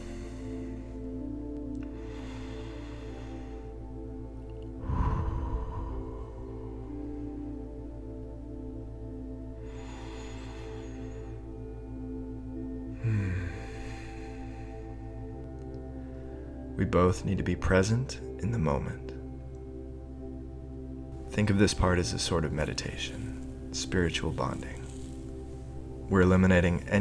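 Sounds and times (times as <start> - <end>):
slow deep breathing: 0.0 - 16.8, 22.6 - 26.1
speech: 16.9 - 19.1, 21.4 - 24.8, 26.1 - 26.9.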